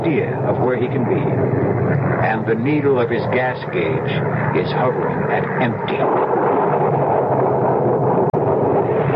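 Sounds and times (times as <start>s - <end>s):
deep rumbling undertone like thunder: 0.0s - 9.1s
storm roar of rushing wind: 0.0s - 9.1s
speech: 0.1s - 6.6s.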